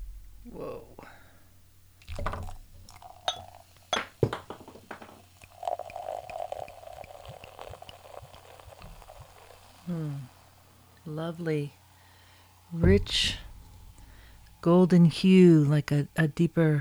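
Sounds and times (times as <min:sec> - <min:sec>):
cider poured into a glass fizzing and bubbling: 0:01.9 - 0:16.2
cider bottle opened with clinks and knocks: 0:02.1 - 0:08.0, 0:12.8 - 0:14.6
speech: 0:11.2 - 0:11.8, 0:12.7 - 0:13.4, 0:14.6 - 0:16.7.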